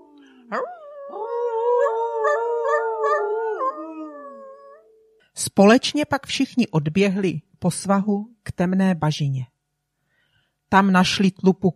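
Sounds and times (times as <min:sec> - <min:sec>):
pack of wolves howling: 0:00.0 - 0:04.8
speech: 0:00.5 - 0:01.5, 0:05.4 - 0:09.5, 0:10.7 - 0:11.7.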